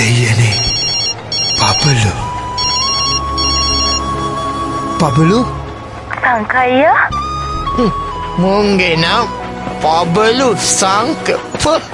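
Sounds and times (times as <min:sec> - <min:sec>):
mobile phone ringing with a bright trilling electronic ring: 0:00.2 - 0:04.5
speech: 0:05.0 - 0:05.6, 0:06.2 - 0:07.2, 0:07.8 - 0:11.9.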